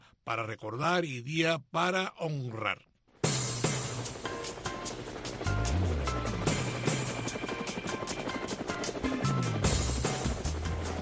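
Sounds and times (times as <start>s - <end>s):
speech: 0.3s - 2.9s
helicopter flying overhead with rotor chopping and engine whine: 3.2s - 11.0s.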